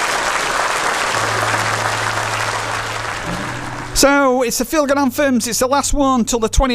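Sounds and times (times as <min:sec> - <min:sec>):
crowd applauding: 0:00.0 - 0:04.2
low hum: 0:01.2 - 0:04.2
speech: 0:04.0 - 0:06.7.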